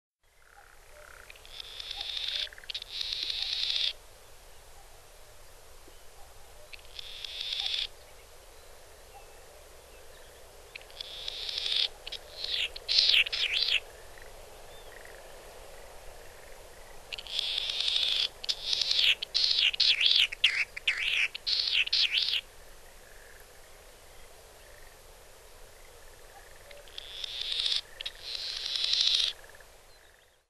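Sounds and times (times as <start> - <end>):
Latham's snipe calling in Nagano: 0.5 - 4.0, 6.6 - 7.9, 10.8 - 14.3, 17.1 - 22.5, 26.4 - 29.6.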